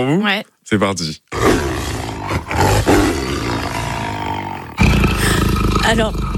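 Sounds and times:
speech: 0:00.0 - 0:03.1, 0:05.9 - 0:06.3
lion roaring: 0:01.3 - 0:06.3.

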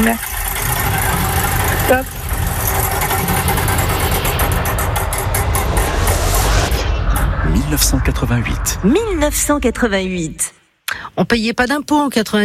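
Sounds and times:
game show time wheel spinning and clicking: 0:00.0 - 0:06.3
dense broadband wash: 0:00.2 - 0:10.8
speech: 0:01.9 - 0:02.1, 0:08.1 - 0:10.6, 0:11.2 - 0:12.4.

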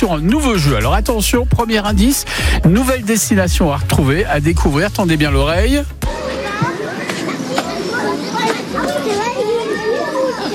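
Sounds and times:
speech: 0:00.0 - 0:06.4
hubbub: 0:00.0 - 0:10.5
young children playing and shouting: 0:06.0 - 0:10.5.

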